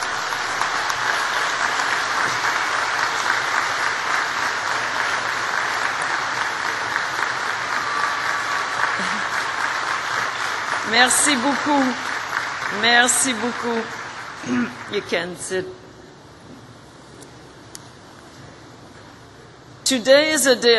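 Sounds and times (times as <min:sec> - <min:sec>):
graduating class crowd applauding: 0:00.0 - 0:15.1
speech: 0:10.9 - 0:12.1, 0:12.7 - 0:15.8, 0:19.9 - 0:20.7.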